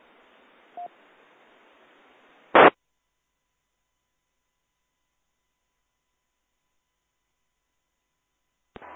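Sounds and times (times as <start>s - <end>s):
brief radio crackle: 0.0s - 2.8s, 8.7s - 8.9s
radio static hiss: 0.0s - 2.8s, 8.7s - 8.9s
sharp loud radio carrier signal burst: 2.6s - 2.8s.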